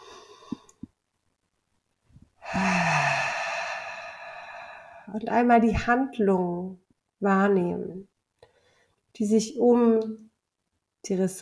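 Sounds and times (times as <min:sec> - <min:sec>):
long sighing exhale during a guided relaxation exercise: 0:02.4 - 0:05.1
speech: 0:05.1 - 0:08.1, 0:09.2 - 0:10.3, 0:11.0 - 0:11.3.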